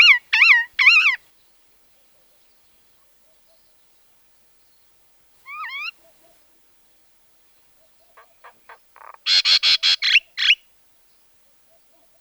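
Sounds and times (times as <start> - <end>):
common myna calling with whistles, clicks and harsh squawks: 0.0 - 1.2, 5.5 - 6.1, 7.9 - 10.6.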